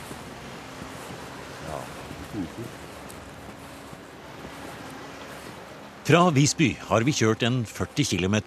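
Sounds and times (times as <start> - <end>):
distant sea waves washing against a coast: 0.0 - 8.4
voice murmuring: 1.6 - 2.8
speech: 2.4 - 2.9, 6.1 - 8.4.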